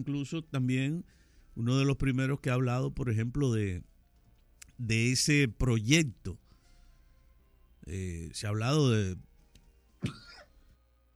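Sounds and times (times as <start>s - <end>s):
speech: 0.0s - 3.9s, 4.8s - 6.4s, 7.8s - 9.3s, 10.0s - 10.2s
person coughing: 10.0s - 10.6s.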